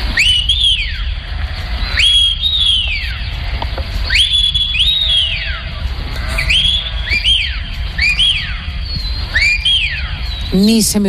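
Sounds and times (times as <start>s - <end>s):
shepherd's shrill whistles to livestock: 0.1s - 1.2s, 1.8s - 3.2s, 4.0s - 11.0s
speech: 10.6s - 11.0s.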